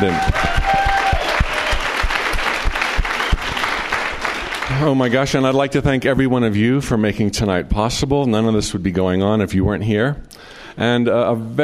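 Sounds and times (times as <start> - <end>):
speech: 0.0 - 0.5, 4.8 - 11.6
crowd clapping steadily and loudly: 0.0 - 5.5.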